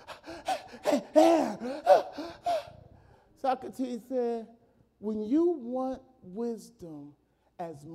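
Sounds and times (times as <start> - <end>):
person gasping for air with ragged voiced breaths: 0.0 - 3.4
speech: 0.9 - 1.7, 3.6 - 7.9.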